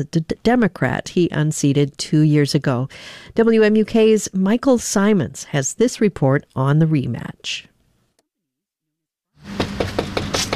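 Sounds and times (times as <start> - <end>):
speech: 0.0 - 7.7
knocking on a front door: 9.6 - 10.5.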